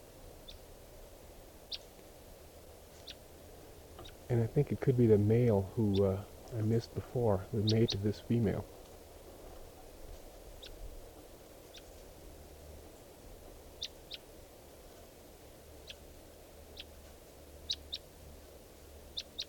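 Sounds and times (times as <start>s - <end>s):
low rumble: 0.0s - 19.4s
wild bird chirping: 0.4s - 0.7s, 2.8s - 3.2s, 3.9s - 8.7s, 10.6s - 10.8s, 11.7s - 12.0s, 13.8s - 14.3s, 15.8s - 16.1s, 16.7s - 17.0s, 17.6s - 18.1s, 19.1s - 19.4s
speech: 4.3s - 8.8s.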